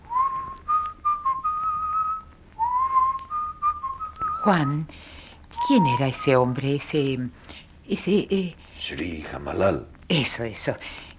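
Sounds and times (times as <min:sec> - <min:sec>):
soft melodic whistling of a slow wavering tune: 0:00.0 - 0:04.8, 0:05.5 - 0:06.3
speech: 0:04.4 - 0:11.1.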